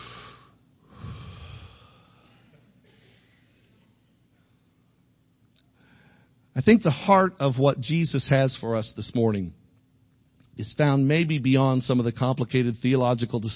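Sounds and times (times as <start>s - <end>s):
church congregation taking a deep cleansing breath during a sermon: 0.0s - 3.8s, 5.8s - 6.5s
speech: 6.6s - 9.6s, 10.6s - 13.5s.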